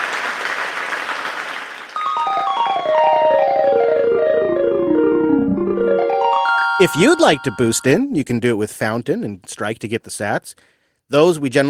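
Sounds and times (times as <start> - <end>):
crowd applause: 0.0 - 5.0
descending electronic chime melody: 2.0 - 8.2
speech: 6.8 - 11.6.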